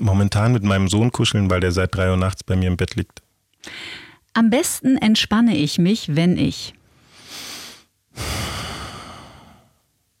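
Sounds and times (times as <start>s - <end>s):
speech: 0.0s - 7.4s
deep breathing: 6.9s - 9.9s.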